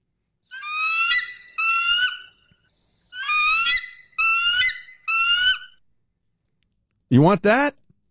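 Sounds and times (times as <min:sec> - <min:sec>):
American bald eagle call: 0:00.5 - 0:05.8
speech: 0:07.1 - 0:07.8.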